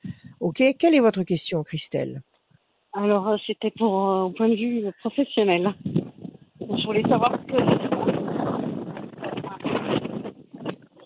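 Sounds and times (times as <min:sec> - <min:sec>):
gusty wind buffeting a telephone line: 0:00.0 - 0:00.6, 0:05.1 - 0:11.0
speech: 0:00.4 - 0:02.3, 0:03.0 - 0:06.0, 0:06.7 - 0:07.9.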